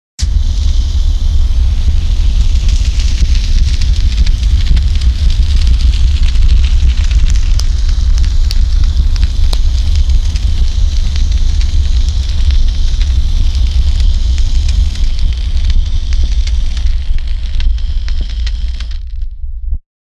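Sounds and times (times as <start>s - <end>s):
narrow fire: 0.2s - 19.6s.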